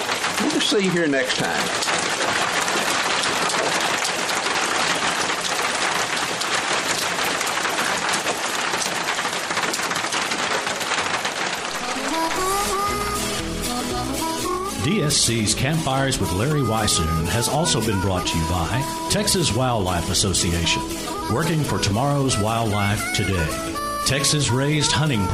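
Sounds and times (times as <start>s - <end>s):
dense morning rain pattering on a surface: 0.0s - 25.3s
speech: 0.7s - 2.4s, 14.8s - 25.3s
music with sustained tones: 11.8s - 25.3s.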